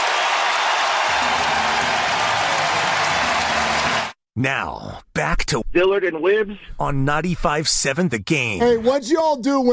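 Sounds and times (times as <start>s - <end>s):
packed ballpark crowd roaring and cheering: 0.0s - 4.2s
speech: 4.4s - 9.7s.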